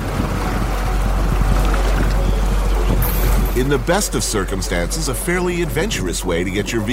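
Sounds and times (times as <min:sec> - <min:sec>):
fast-flowing river running high with churning water and deep rumble: 0:00.0 - 0:06.9
speech: 0:03.6 - 0:06.9.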